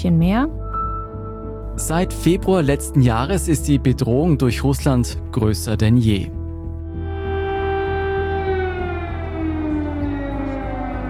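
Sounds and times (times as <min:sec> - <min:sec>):
speech: 0:00.0 - 0:00.6, 0:01.8 - 0:06.4
air raid siren wailing over a city: 0:06.8 - 0:11.0.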